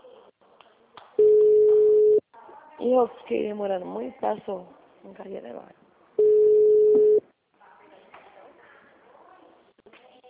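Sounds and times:
phone line tone after a dropped call: 1.2 - 2.2, 6.2 - 7.2
speech: 2.8 - 5.8.

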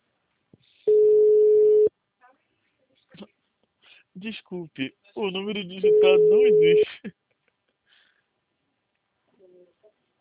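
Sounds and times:
faint noises on phone line: 0.9 - 1.9, 5.7 - 7.0
telephone ringback tone: 0.9 - 1.9, 5.9 - 6.8
speech: 4.2 - 7.2.

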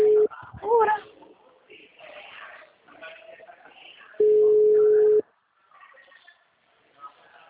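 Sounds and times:
person talking: 0.0 - 1.1
ringback tone on an outgoing telephone call: 4.2 - 5.2.

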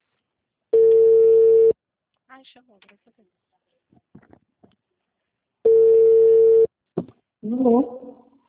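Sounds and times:
telephone buzzing ring tone on a call: 0.8 - 1.8, 5.7 - 6.7
speech: 2.4 - 4.4, 7.4 - 8.1.

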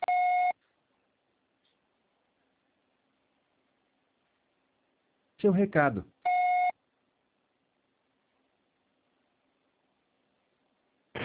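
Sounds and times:
voicemail beep: 0.0 - 0.6, 6.3 - 6.7
speech: 5.4 - 6.1.

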